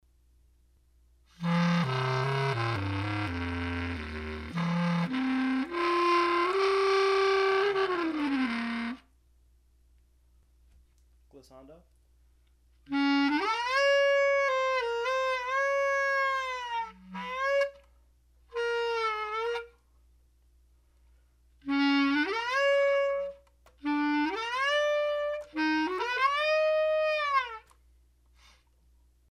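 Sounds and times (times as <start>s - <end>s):
bass clarinet flutter tongue portamento: 1.3s - 9.1s, 12.8s - 17.9s, 18.5s - 19.8s, 21.6s - 27.8s.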